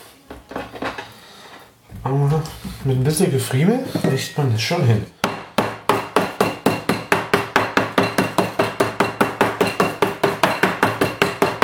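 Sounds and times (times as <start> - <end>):
speech: 2.1 - 5.2
meat for rouladen pounded in a kitchen: 5.2 - 11.6.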